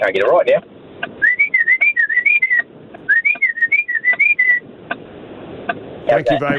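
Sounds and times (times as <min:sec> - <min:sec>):
speech: 0:00.1 - 0:00.7, 0:06.1 - 0:06.5
person whistling a tune to magpies: 0:01.2 - 0:04.6.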